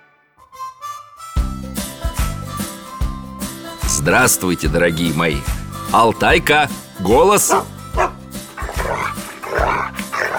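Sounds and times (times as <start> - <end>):
speech: 4.0 - 7.7
dog barking: 7.4 - 10.3.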